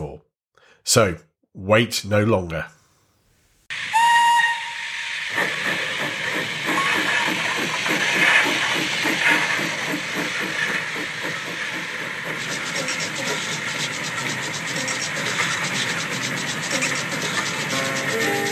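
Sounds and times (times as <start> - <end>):
speech: 0.8 - 2.8
steam locomotive whistle blast: 3.7 - 5.8, 17.7 - 18.5
steam locomotive chuffing as it gets moving: 3.7 - 18.5.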